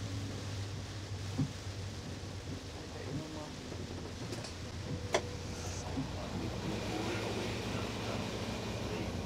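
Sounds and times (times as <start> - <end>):
train rumbling into a station: 0.0 - 9.2.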